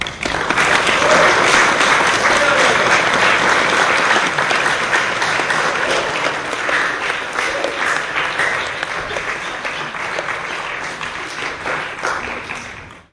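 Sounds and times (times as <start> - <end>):
small hall applause: 0.0 - 13.1.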